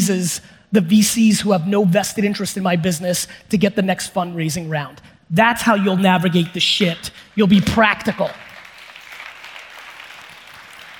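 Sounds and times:
speech: 0.1 - 8.4
audience applause: 8.4 - 10.9.

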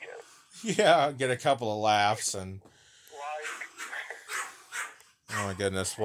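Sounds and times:
speech: 0.6 - 2.7, 5.5 - 6.0
dog barking: 3.2 - 5.7
dog whining: 3.4 - 5.6.

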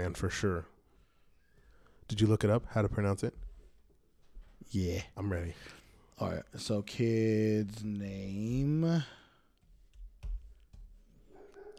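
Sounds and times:
speech: 0.0 - 0.7, 2.1 - 3.5, 4.6 - 9.2
dog barking: 11.2 - 11.7.

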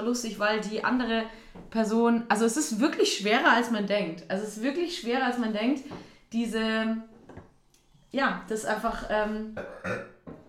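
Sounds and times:
speech: 0.0 - 7.1, 8.1 - 10.1
burp or sneeze: 9.5 - 10.2.

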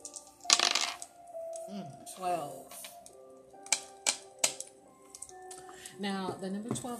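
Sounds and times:
dice clattering and tumbling across a hard surface: 0.0 - 1.1
speech: 1.7 - 2.8, 6.0 - 6.9.

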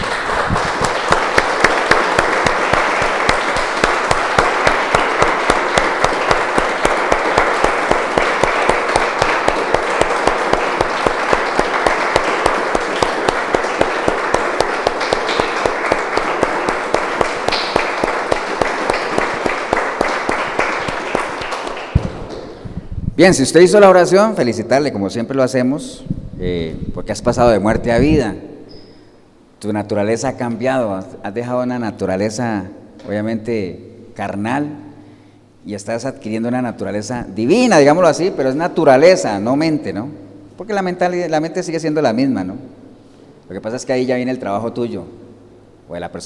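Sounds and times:
large church audience applauding after a prayer: 0.0 - 22.6
speech: 23.2 - 28.4, 29.6 - 34.8, 35.6 - 42.7, 43.5 - 45.2, 45.9 - 46.2.

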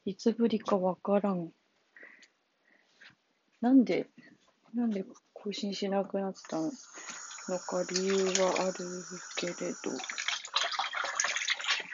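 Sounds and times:
speech: 0.1 - 1.6, 3.6 - 10.3
water running from a tap while washing dishes: 6.4 - 11.9.

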